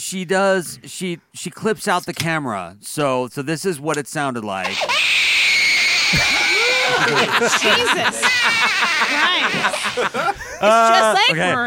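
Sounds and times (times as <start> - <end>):
speech: 0.0 - 5.3, 6.1 - 11.6
child crying and screaming: 4.7 - 7.1, 8.1 - 9.6
laughter: 6.0 - 11.6.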